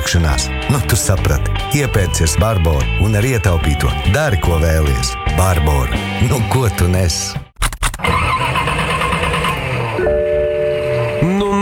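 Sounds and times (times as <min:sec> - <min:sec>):
speech: 0:00.1 - 0:07.4
old car engine cranking and starting: 0:07.6 - 0:11.6.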